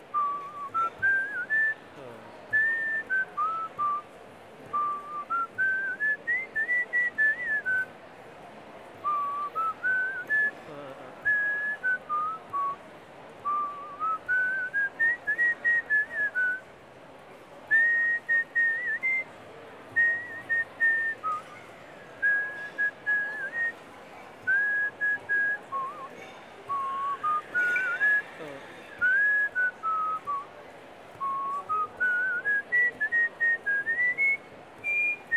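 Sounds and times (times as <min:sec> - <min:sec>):
person whistling a wavering melody: 0:00.1 - 0:01.8, 0:02.5 - 0:04.0, 0:04.7 - 0:07.9, 0:09.0 - 0:10.5, 0:11.2 - 0:12.8, 0:13.4 - 0:16.6, 0:17.7 - 0:19.3, 0:20.0 - 0:21.5, 0:22.2 - 0:23.8, 0:24.4 - 0:30.5, 0:31.1 - 0:35.3.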